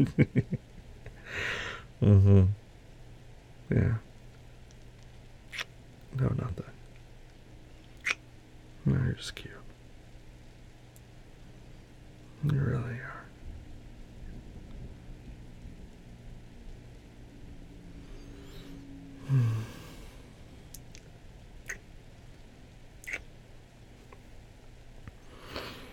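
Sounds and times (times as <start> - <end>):
speech: 0.0 - 0.5, 1.3 - 2.6, 3.7 - 4.1, 6.2 - 6.7, 8.8 - 9.6, 12.4 - 13.1
rain pattering in a thunderstorm: 13.4 - 17.8.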